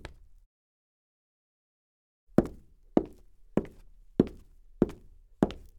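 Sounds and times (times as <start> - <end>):
dress boot footsteps on hard wood: 2.4 - 5.7.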